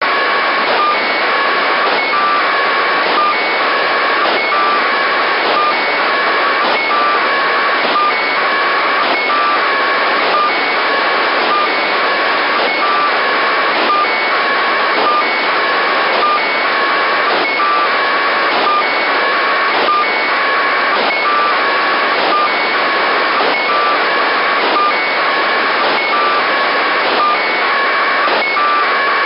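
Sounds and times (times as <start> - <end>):
packet radio transmission on 437.485 MHz: 0.0 - 29.2.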